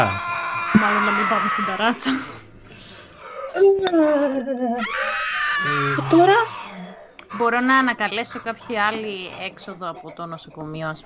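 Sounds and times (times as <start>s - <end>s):
person screaming in an elevator shaft: 0.0s - 2.2s, 4.8s - 6.5s
voice wailing: 0.0s - 2.3s, 3.5s - 11.0s
speech: 0.0s - 2.4s, 3.6s - 6.6s, 7.3s - 11.0s.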